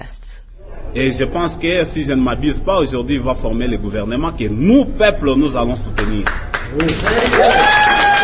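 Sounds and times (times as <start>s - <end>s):
speech: 0.0s - 7.9s
man speaking animatedly: 0.9s - 6.3s
room of young men applauding loudly: 6.0s - 8.2s.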